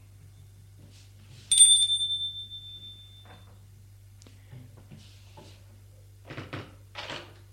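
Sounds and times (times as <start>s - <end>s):
low steady hum: 0.0s - 6.2s
bright doorbell ding at an apartment door: 1.5s - 3.6s.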